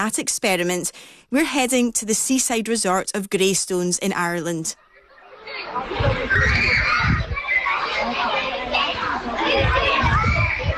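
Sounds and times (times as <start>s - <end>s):
speech: 0.0s - 4.8s, 5.5s - 6.9s
children laughing, shouting and chattering in a primary school playground in Ireland: 4.8s - 10.7s.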